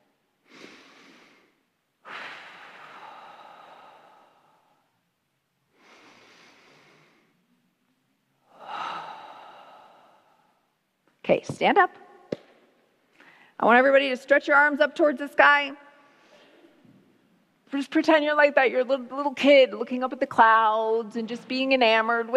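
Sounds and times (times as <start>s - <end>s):
group taking long soft deep breaths: 0.4s - 5.1s, 5.7s - 7.7s, 8.4s - 10.7s, 13.1s - 13.6s, 16.0s - 16.8s
speech: 11.3s - 12.1s, 13.6s - 15.8s, 17.7s - 22.3s.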